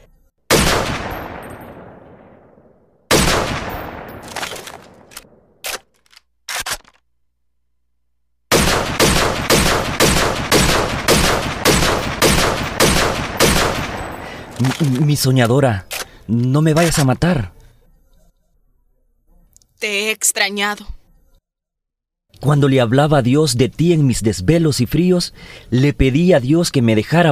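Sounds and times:
firing squad gunshots in a ravine: 0.5 - 5.6, 8.5 - 14.6
speech: 14.7 - 17.6, 19.8 - 21.0, 22.4 - 27.2.

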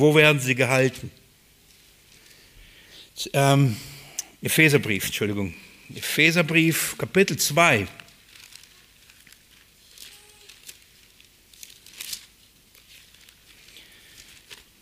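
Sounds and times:
speech: 0.0 - 1.2, 3.2 - 8.0
thin Bible paper pages rustling as they are flipped: 8.0 - 14.8.

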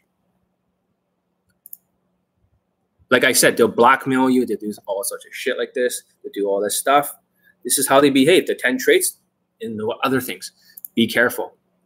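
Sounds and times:
computer mouse clicks: 1.5 - 1.9
speech: 3.1 - 11.6.

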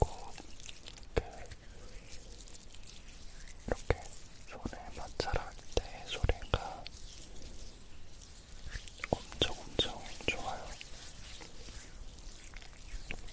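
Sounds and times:
body cream being applied: 0.0 - 13.3.

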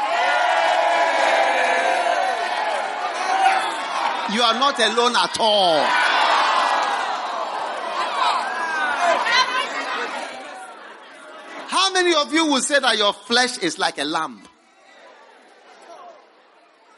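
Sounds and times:
audience whooping: 0.0 - 10.8
audience shouting back in response: 0.0 - 11.7
speech: 4.3 - 6.0, 12.0 - 14.5.

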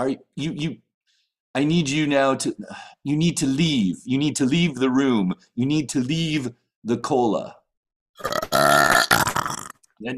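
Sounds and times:
speech: 0.0 - 0.8, 1.6 - 7.6, 8.2 - 8.4, 10.0 - 10.1
long loud drawn-out burp: 8.2 - 9.8.

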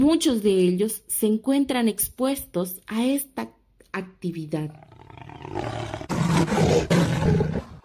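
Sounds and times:
speech: 0.0 - 7.7
jaguar roaring with rough rasping growls: 4.8 - 7.8.

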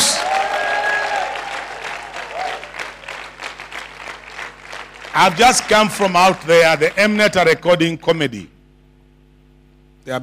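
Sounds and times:
audience applause: 0.0 - 7.2
speech: 5.2 - 8.6, 10.0 - 10.2.

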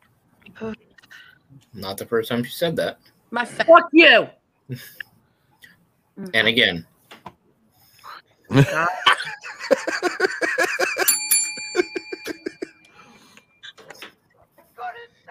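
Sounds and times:
speech: 0.6 - 0.9, 1.5 - 5.1, 6.2 - 6.9, 8.5 - 10.4
laughter: 8.5 - 12.8
hand bell ringing: 11.0 - 13.4.

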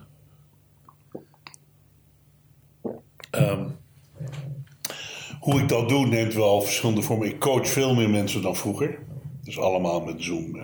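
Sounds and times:
low steady hum: 0.0 - 10.6
person sipping water: 0.8 - 1.7, 2.6 - 3.7
speech: 3.4 - 3.8, 5.5 - 10.6.

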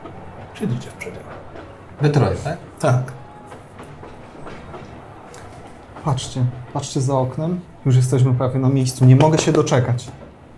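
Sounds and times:
moving train wheels clacking heard from inside a passenger compartment: 0.0 - 10.5
speech: 0.6 - 3.2, 6.0 - 10.2.

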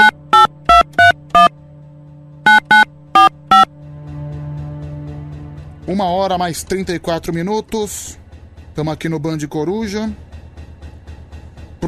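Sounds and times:
electronic telephone keypad beeps placing a call: 0.0 - 1.5, 2.5 - 3.7
speech: 5.9 - 8.2, 8.8 - 10.2.

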